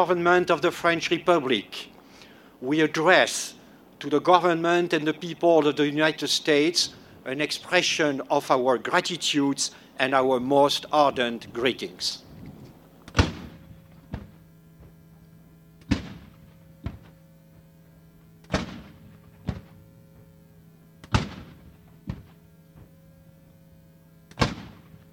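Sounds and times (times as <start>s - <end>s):
speech: 0.0s - 1.9s, 2.6s - 12.3s
steady low hum: 0.0s - 25.1s
ceremonial cannon fire at the National World War I Museum and Memorial in Kansas City: 13.1s - 14.4s, 15.8s - 17.2s, 18.4s - 19.9s, 21.0s - 22.4s, 24.3s - 25.0s
fainter thud of cannon fire: 13.1s - 15.0s, 15.8s - 17.2s, 18.5s - 19.8s, 21.0s - 22.9s, 24.4s - 25.0s.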